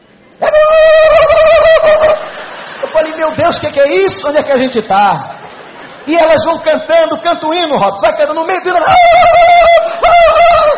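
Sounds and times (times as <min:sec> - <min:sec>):
faint noise: 0:00.0 - 0:10.7
voice imitating ululation by rolling the tongue: 0:00.4 - 0:02.3, 0:08.8 - 0:10.7
speech: 0:03.5 - 0:05.3, 0:06.1 - 0:09.6.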